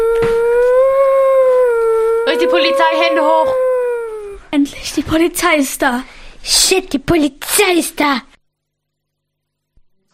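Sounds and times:
dog howling: 0.0s - 4.5s
speech: 2.5s - 3.6s, 4.5s - 8.3s.

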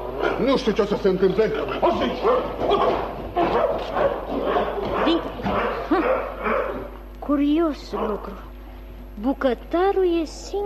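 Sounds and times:
dog barking: 0.2s - 0.7s, 1.8s - 7.0s, 7.9s - 8.4s
speech: 0.4s - 8.5s, 9.2s - 10.6s.

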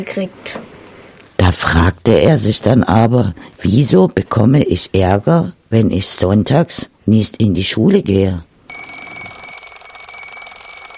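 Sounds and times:
speech: 0.0s - 0.7s, 1.6s - 8.5s
alarm clock ringing with a piercing high-pitched electronic tone: 8.7s - 10.9s.

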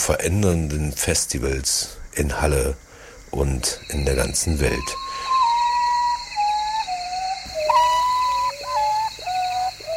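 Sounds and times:
speech: 0.0s - 5.0s
faint steady hiss: 0.0s - 9.9s
common potoo call: 4.7s - 9.9s.

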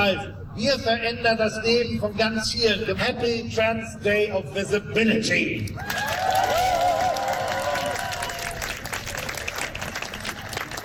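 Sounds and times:
speech: 0.0s - 6.6s
crowd clapping: 5.8s - 10.8s.

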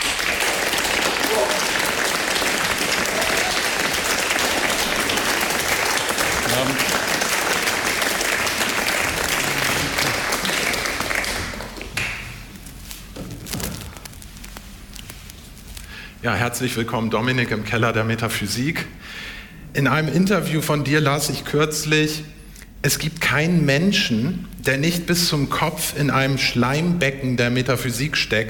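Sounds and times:
loud dense audience applause: 0.0s - 12.5s
speech: 16.3s - 28.4s.

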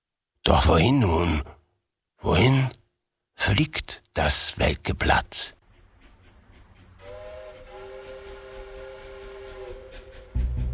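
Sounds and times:
speech: 0.4s - 1.5s, 2.2s - 2.7s, 3.6s - 5.6s
train rumbling on rails: 5.6s - 10.7s
train horn: 7.0s - 10.7s.

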